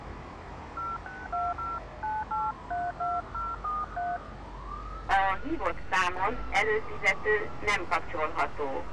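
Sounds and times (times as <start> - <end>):
telephone keypad dialing tones: 0.8 - 4.2
speech: 5.4 - 8.9.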